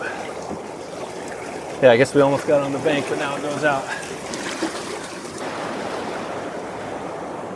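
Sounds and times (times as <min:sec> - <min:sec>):
river rapids rushing around a raft: 0:00.0 - 0:07.5
speech: 0:01.8 - 0:04.4.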